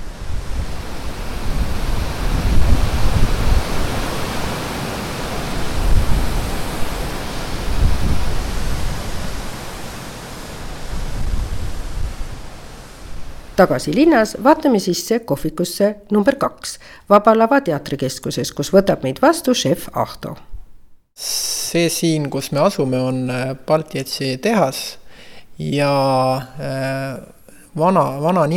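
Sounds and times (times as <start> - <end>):
foaming water pouring over waterfall rapids: 0.0 - 14.1
speech: 13.6 - 20.5, 21.2 - 25.0, 25.6 - 28.5.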